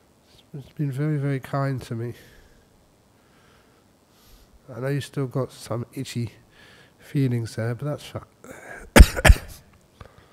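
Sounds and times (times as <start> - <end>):
speech: 0.5 - 2.4, 4.7 - 6.4, 7.0 - 8.6
person coughing: 8.7 - 9.6.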